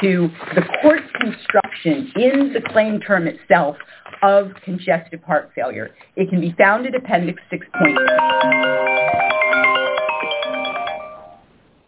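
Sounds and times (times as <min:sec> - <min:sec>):
speech: 0:00.0 - 0:10.2
phone ringtone with layered electronic tones: 0:07.8 - 0:11.4.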